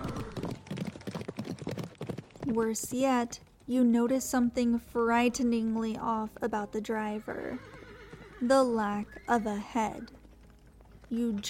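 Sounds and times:
black horses' hooves clip-clopping pulling a carriage: 0.0s - 11.4s
speech: 2.5s - 7.8s, 8.4s - 10.2s, 11.1s - 11.4s.

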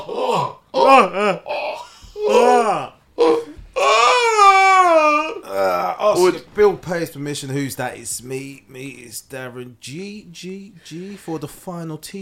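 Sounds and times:
person doing an exaggerated theatrical wailing cry: 0.0s - 6.4s
speech: 0.1s - 1.6s, 6.2s - 12.2s.

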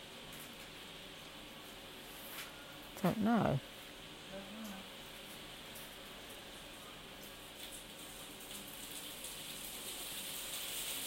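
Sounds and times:
speech: 3.0s - 4.4s
hail pellets striking a surface: 7.5s - 11.0s.

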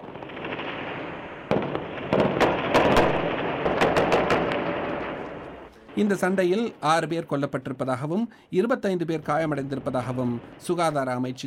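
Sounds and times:
gunfire cracks in armed clashes: 0.0s - 5.8s
speech: 6.0s - 11.4s.

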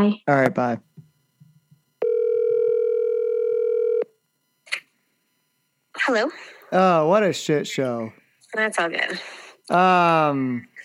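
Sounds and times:
speech: 0.0s - 0.9s, 6.0s - 10.7s
telephone dial tone while placing a call: 2.0s - 4.1s.

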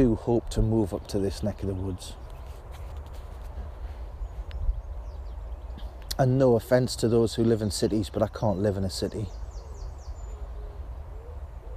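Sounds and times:
speech: 0.0s - 2.2s, 6.2s - 9.4s
wood pigeon cooing: 9.3s - 11.7s.

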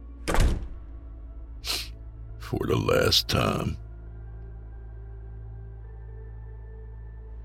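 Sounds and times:
house door opening with a thunk and rattle: 0.2s - 0.9s
speech: 2.5s - 3.8s.

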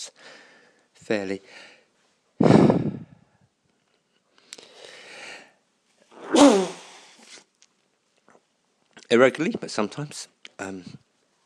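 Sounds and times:
speech: 0.0s - 1.7s, 9.1s - 11.0s
person with a cold sneezing: 6.1s - 7.4s.

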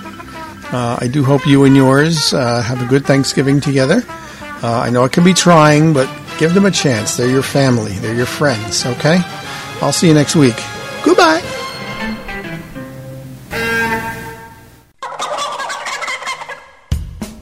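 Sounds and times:
turkeys gobbling: 0.0s - 8.9s, 15.0s - 16.9s
speech: 0.6s - 11.5s.

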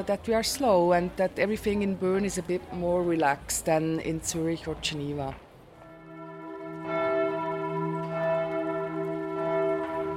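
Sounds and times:
speech: 0.0s - 5.4s
church bells ringing from the Minster bell tower in Bern Switzerland: 5.8s - 10.1s.

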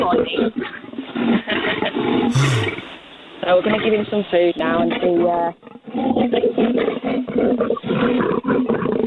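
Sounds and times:
speech: 0.1s - 9.0s
lion roaring: 2.3s - 3.0s.

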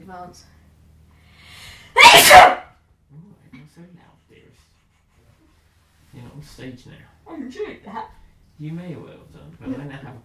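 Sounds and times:
speech: 0.1s - 0.6s, 2.1s - 4.7s, 6.1s - 10.2s
person sneezing: 2.0s - 2.6s.

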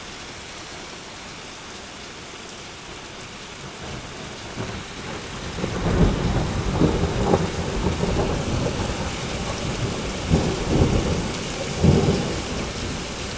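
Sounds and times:
heavy rain lashing down during a bad storm in Normanton: 0.0s - 13.3s
dense steady roar of hail bouncing down in Normanton: 3.7s - 13.3s
thunder rumbling and booming during a hailstorm: 3.8s - 13.3s.

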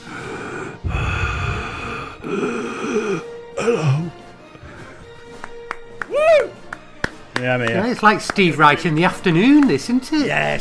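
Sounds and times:
heavy labored breathing: 0.0s - 5.4s
speech: 2.3s - 4.0s, 7.5s - 10.5s.

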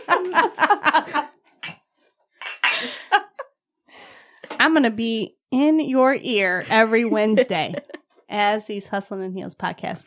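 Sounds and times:
laughter: 0.0s - 1.4s, 6.8s - 8.1s
speech: 0.1s - 1.3s, 4.6s - 10.0s
glasses clinking in a toast: 1.6s - 3.0s.

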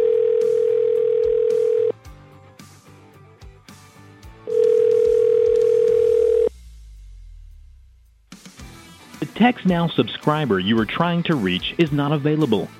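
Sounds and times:
telephone ringback tone: 0.0s - 1.9s, 4.5s - 6.5s
speech: 9.4s - 12.7s.

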